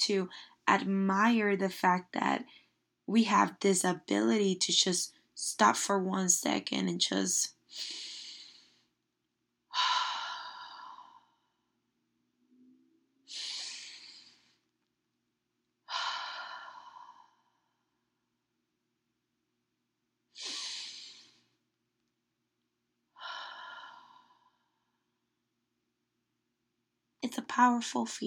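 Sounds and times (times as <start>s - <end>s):
speech: 0.0s - 8.1s, 27.6s - 28.2s
slow deep breaths from a calm breathing exercise: 7.7s - 9.0s, 9.7s - 11.7s, 13.3s - 14.7s, 15.9s - 18.1s, 23.1s - 25.2s.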